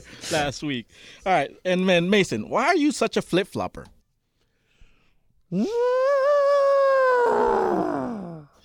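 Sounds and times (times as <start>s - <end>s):
speech: 0.3s - 4.0s, 5.5s - 6.1s, 7.3s - 7.9s
person imitating an elephant call: 5.5s - 8.5s.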